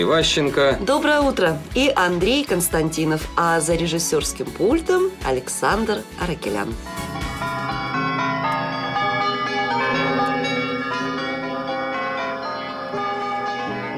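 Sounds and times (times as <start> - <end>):
speech: 0.0 - 7.0
bells chiming a bright playful tune: 6.6 - 13.9.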